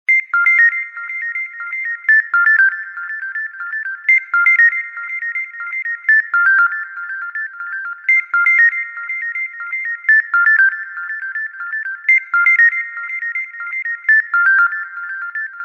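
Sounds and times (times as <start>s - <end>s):
Xiaomi phone ringtone: 0.1s - 15.6s.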